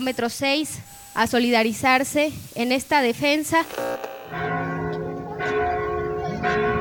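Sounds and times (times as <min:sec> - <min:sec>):
speech: 0:00.0 - 0:04.5
parish church bells ringing in alarm: 0:04.3 - 0:06.7.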